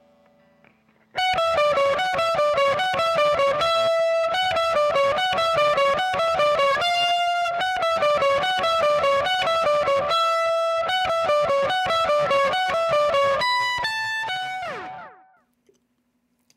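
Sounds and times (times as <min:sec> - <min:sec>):
overdriven electric guitar lead solo through overdrive and analog delay pedals: 0:01.1 - 0:15.4.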